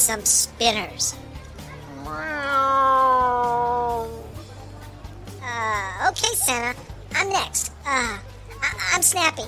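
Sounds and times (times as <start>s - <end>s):
speech: 0.0s - 1.3s, 2.1s - 2.4s, 6.2s - 9.4s
cat yowling meow: 1.9s - 4.3s.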